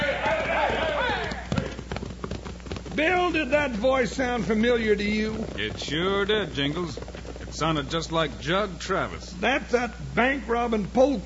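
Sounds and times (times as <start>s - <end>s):
clip-clopping hoofbeats of horses galloping away: 0.0s - 11.2s
speech: 3.0s - 11.2s.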